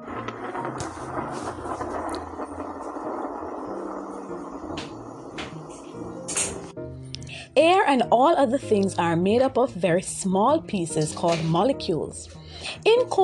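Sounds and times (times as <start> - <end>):
thunder rumbling: 0.0 - 7.0
speech: 7.6 - 13.2.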